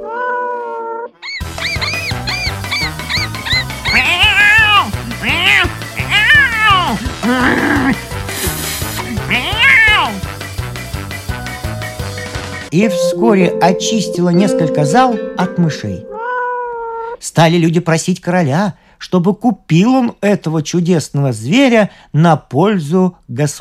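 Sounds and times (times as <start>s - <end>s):
cat meowing in loud drawn-out cries: 0.0s - 8.0s, 9.3s - 10.2s, 16.2s - 17.2s
steady musical backing: 1.4s - 16.4s
speech: 7.3s - 8.1s, 12.7s - 16.1s, 17.4s - 23.5s.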